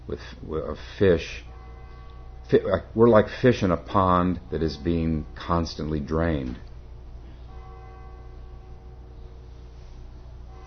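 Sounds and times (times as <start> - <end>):
speech: 0.1 - 1.5, 2.5 - 6.7
deep church bell tolling: 1.2 - 10.6
low steady rumble: 3.8 - 7.7.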